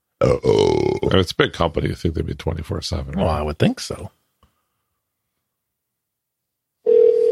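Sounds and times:
speech: 0.2 - 4.2
electronic telephone ringing tone heard through the line: 6.8 - 7.3.

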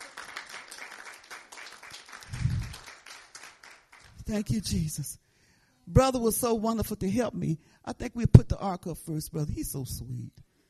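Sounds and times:
audience clapping hands: 0.0 - 4.2
speech: 4.3 - 5.2, 5.9 - 10.5.

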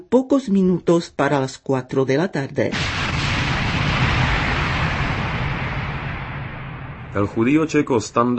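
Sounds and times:
speech: 0.0 - 3.1, 7.1 - 8.3
grenade explosion: 2.7 - 8.3.

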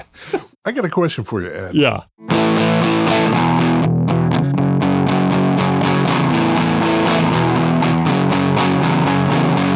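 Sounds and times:
speech: 0.7 - 2.1
distorted electric guitar chords on a Gibson Firebird reissue of the 1963 design: 2.2 - 9.7.

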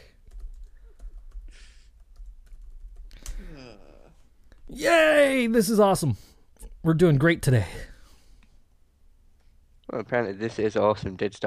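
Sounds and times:
typing on a computer keyboard: 0.0 - 3.4
speech: 4.7 - 7.9, 9.9 - 11.4.

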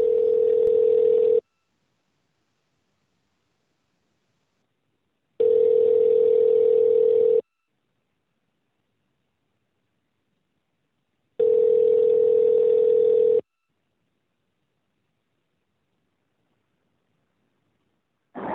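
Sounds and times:
telephone tone while calling back after a disconnected call: 0.0 - 1.5, 5.4 - 7.5, 11.4 - 13.5.

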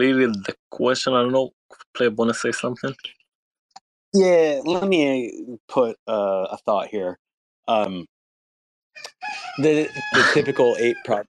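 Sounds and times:
speech: 0.0 - 3.2, 4.1 - 8.1, 9.0 - 11.2
laughter: 2.0 - 3.0, 9.6 - 11.2
rooster crowing: 9.0 - 11.2.

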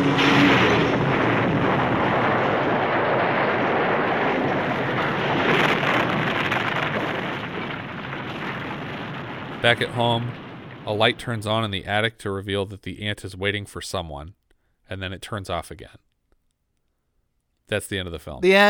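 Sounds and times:
car explosion with crackling, rumbling blast: 0.2 - 11.6
speech: 9.6 - 16.0, 17.7 - 18.6.

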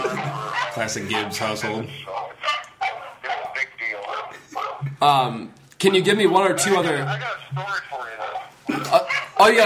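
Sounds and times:
laughter: 0.0 - 2.3, 8.7 - 9.4
small dogs barking and yipping in a household: 0.0 - 4.8
speech: 0.8 - 2.2, 4.9 - 7.9, 9.4 - 9.6.

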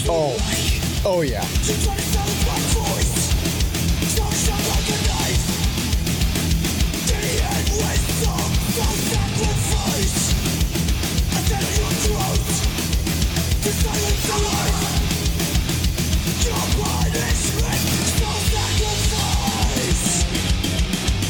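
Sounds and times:
fast distorted thrash metal guitar riff: 0.0 - 21.2
pounding thrash metal drums: 0.0 - 21.2
speech: 0.1 - 3.4
harsh screamed thrash metal vocals: 1.4 - 5.9, 6.9 - 10.5, 11.2 - 12.8, 13.5 - 15.5, 16.3 - 20.3.

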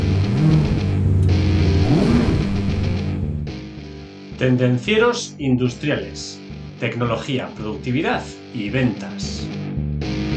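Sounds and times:
car engine revving: 0.0 - 3.7
speech: 4.4 - 9.7.

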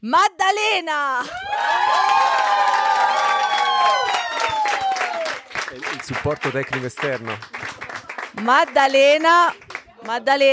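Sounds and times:
speech: 0.0 - 4.6, 5.7 - 7.8, 8.4 - 10.5
crowd cheering with high shouts and whoops: 1.2 - 5.6
loud crowd applause during a final thank-you: 1.3 - 10.5.

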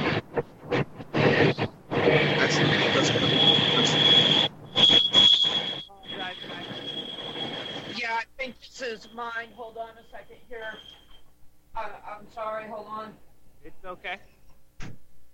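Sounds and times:
freight train rumbling past: 0.0 - 8.3
high-pitched freight train wheel squeal: 2.1 - 8.0, 10.2 - 11.4.

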